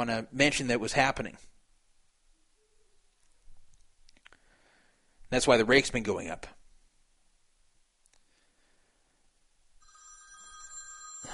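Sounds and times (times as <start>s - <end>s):
speech: 0.0s - 1.5s, 5.3s - 6.6s
low room hiss: 0.0s - 11.3s
telephone ringing with an electronic warbling tone: 9.8s - 11.3s.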